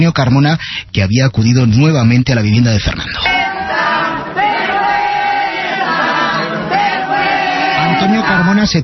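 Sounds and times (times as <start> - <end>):
speech: 0.0 - 3.4, 8.0 - 8.8
crowd of anti-eviction protesters booing and jeering: 3.3 - 8.6.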